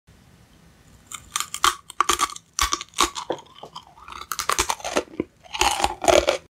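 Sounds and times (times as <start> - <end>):
eating pretzels: 1.1 - 6.5.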